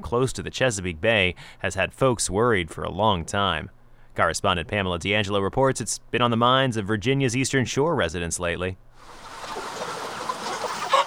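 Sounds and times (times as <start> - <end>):
speech: 0.0 - 9.6
thousands of chickens clucking and squawking inside a chicken house: 9.1 - 11.0.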